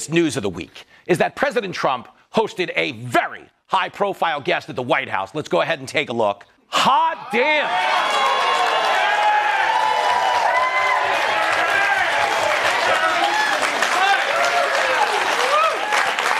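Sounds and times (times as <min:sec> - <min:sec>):
speech: 0:00.0 - 0:08.4
studio audience cheers and whoops: 0:07.3 - 0:16.3
studio audience applause: 0:07.5 - 0:16.3.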